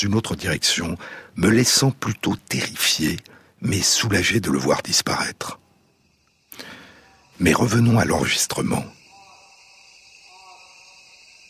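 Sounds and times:
speech: 0.0s - 5.6s, 7.4s - 9.0s
cicadas singing in a rainforest: 0.0s - 11.4s
faint tonal call rising and falling: 5.6s - 11.4s.

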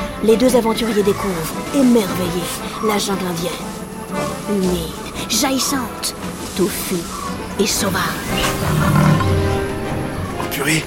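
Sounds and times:
speech: 0.2s - 3.8s, 4.5s - 9.4s, 10.6s - 10.8s
big cat roaring in jungle: 7.1s - 10.8s.

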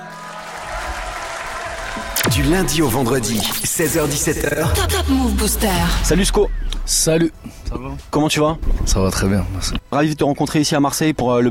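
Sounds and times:
crowd applauding: 0.0s - 5.3s
speech: 2.2s - 11.4s.

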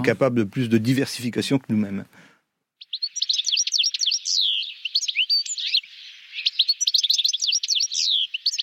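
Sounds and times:
speech: 0.0s - 2.3s
European goldfinch singing: 2.8s - 8.6s.

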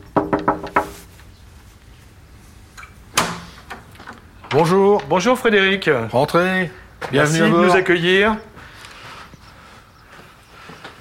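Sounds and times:
knocking on a wooden door in a paved alley in Lesconil France: 0.0s - 0.9s
latch or door clunk: 2.8s - 5.1s
speech: 4.5s - 8.5s.

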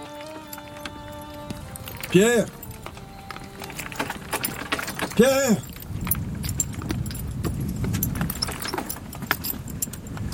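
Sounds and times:
horse harness jingling: 0.0s - 10.3s
horse hooves clopping: 0.0s - 10.3s
speech: 2.1s - 2.6s, 5.2s - 5.7s.

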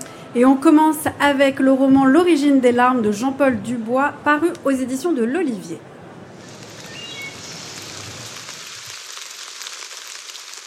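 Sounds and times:
speech: 0.4s - 5.9s
heavy rain falling with patter of drops on surfaces: 6.3s - 10.6s.

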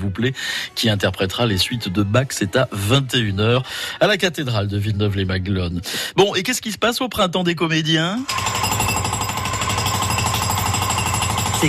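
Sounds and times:
speech: 0.0s - 8.7s
jackhammer pounding: 8.2s - 11.6s.

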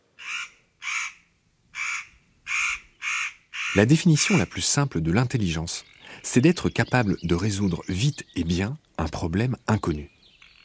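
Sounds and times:
crow cawing: 0.2s - 4.5s
speech: 3.8s - 10.2s.

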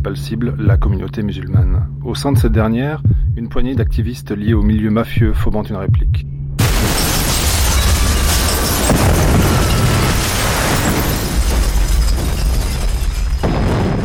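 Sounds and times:
speech: 0.1s - 7.0s
bomb blast: 6.6s - 14.0s
crackling debris: 6.6s - 14.0s.

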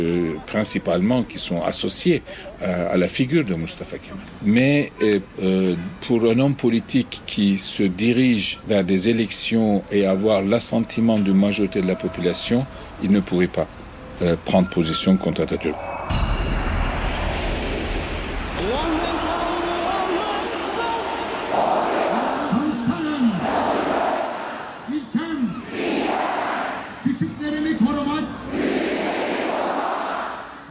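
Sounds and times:
speech: 0.0s - 16.3s
crowd of tens of thousands chanting an oath in unison on Republic Day: 15.8s - 24.9s, 25.5s - 27.1s, 28.3s - 30.7s.

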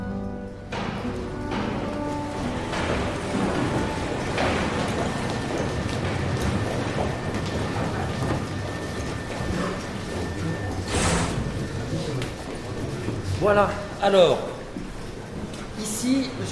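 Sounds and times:
factory machines running during a company visit in Brittany: 0.0s - 16.5s
clanks and knocks: 0.6s - 13.3s
speech: 13.5s - 14.5s, 16.0s - 16.5s.

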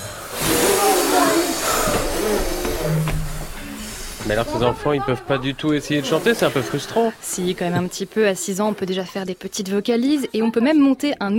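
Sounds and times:
group of children making a whooshing hiss with their mouths imitating strong wind: 0.0s - 5.0s
speech: 4.3s - 11.3s.

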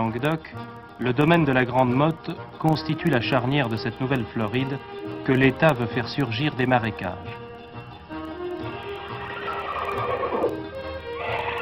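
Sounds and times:
speech: 0.0s - 7.4s
wild horse neighing in the marshes of La Grande Motte, Camargue, France: 8.4s - 11.6s.

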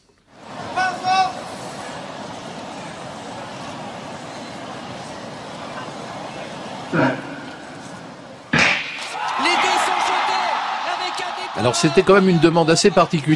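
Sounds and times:
stadium crowd murmur before a 100-metre race: 0.0s - 13.3s
speech: 6.9s - 7.2s, 11.6s - 13.3s.

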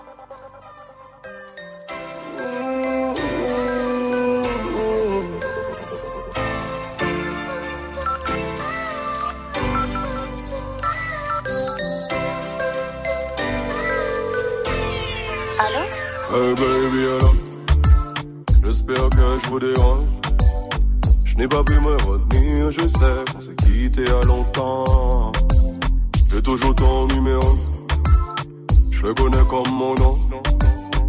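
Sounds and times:
bright chiming melodic tones of a French rap song intro: 1.2s - 8.5s, 11.3s - 16.8s
deep bass line of a French rap song intro: 14.8s - 31.0s
speech: 21.4s - 25.4s, 26.4s - 27.7s, 29.0s - 30.3s.

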